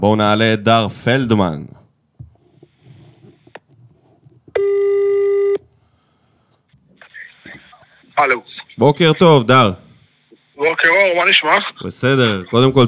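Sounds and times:
speech: 0:00.0 - 0:01.8, 0:08.2 - 0:09.8, 0:10.6 - 0:12.8
outgoing telephone call ringing tone: 0:04.6 - 0:05.6.

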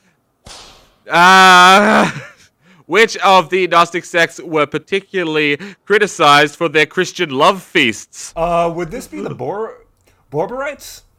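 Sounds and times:
whip crack as a man is whipped: 0:00.4 - 0:01.0
speech: 0:01.0 - 0:02.3, 0:02.9 - 0:11.1
man groaning or crying out: 0:01.1 - 0:02.3.

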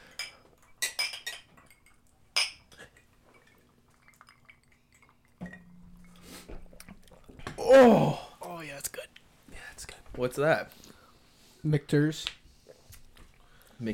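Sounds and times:
glasses clinking together in a toast: 0:00.1 - 0:07.6
low steady hum: 0:01.6 - 0:09.2
speech: 0:07.7 - 0:08.2, 0:10.2 - 0:10.8, 0:11.6 - 0:12.4, 0:13.8 - 0:13.9.

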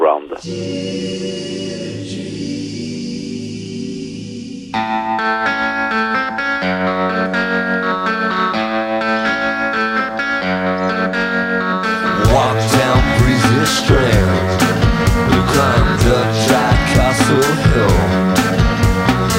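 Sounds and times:
speech: 0:00.4 - 0:01.4
rock track with distorted electric guitar and keyboards: 0:04.7 - 0:19.3.

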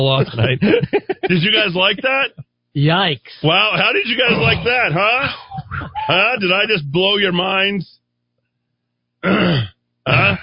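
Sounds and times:
laughter: 0:00.0 - 0:02.4, 0:03.6 - 0:06.9
speech: 0:00.0 - 0:05.4, 0:06.1 - 0:08.0
throat clearing: 0:04.3 - 0:06.2, 0:09.2 - 0:10.4.

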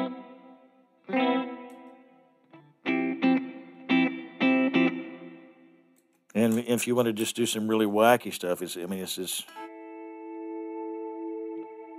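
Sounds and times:
electric guitar chords through chorus and reverb pedal effects: 0:00.0 - 0:06.0, 0:09.5 - 0:11.9
speech: 0:06.4 - 0:09.7.

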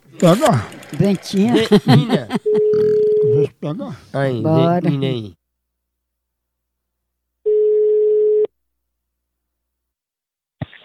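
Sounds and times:
laughter: 0:00.0 - 0:03.8
speech: 0:00.2 - 0:05.4
telephone ringback tone: 0:02.5 - 0:03.3, 0:07.5 - 0:08.5.

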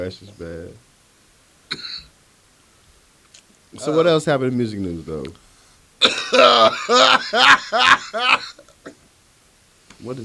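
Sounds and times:
speech: 0:00.0 - 0:00.9, 0:01.7 - 0:02.0, 0:03.7 - 0:05.4, 0:06.0 - 0:09.0, 0:10.0 - 0:10.2
raspy throaty cough mixed with a laugh: 0:01.7 - 0:02.1, 0:06.0 - 0:09.0.

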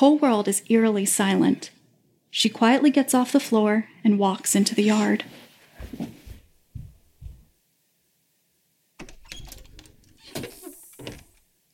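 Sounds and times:
speech: 0:00.0 - 0:06.2
screen door closing with dull thuds at night: 0:09.0 - 0:11.4.

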